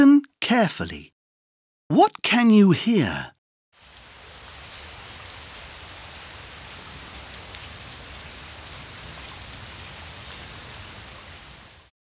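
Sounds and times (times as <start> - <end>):
speech: 0.5 - 1.1, 1.9 - 3.4
steady rain hiss: 3.8 - 11.9.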